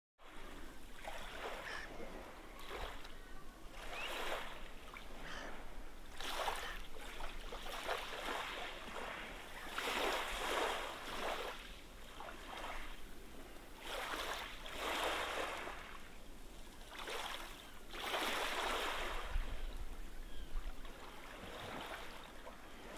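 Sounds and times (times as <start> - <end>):
gentle waves at Whitstable: 0.2 - 22.9.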